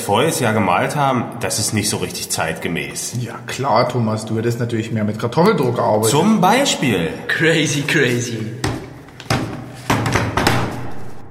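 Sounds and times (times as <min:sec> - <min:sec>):
speech: 0:00.0 - 0:08.6
church doors and windows slamming shut: 0:08.6 - 0:11.2.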